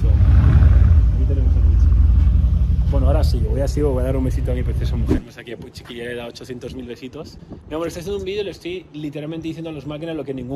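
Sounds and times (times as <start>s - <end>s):
heavy Mercedes G-Wagon SUV engine rumbling and revving as it arrives: 0.0s - 5.2s
speech: 3.2s - 10.5s.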